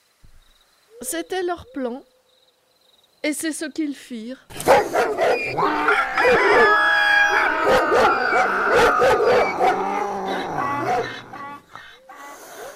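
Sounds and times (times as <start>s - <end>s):
speech: 1.0s - 2.1s, 3.2s - 6.8s, 7.6s - 10.0s
dog barking: 4.6s - 6.8s, 7.5s - 10.0s, 10.6s - 11.4s
donkey braying: 5.1s - 12.7s
rooster crowing: 5.3s - 11.6s.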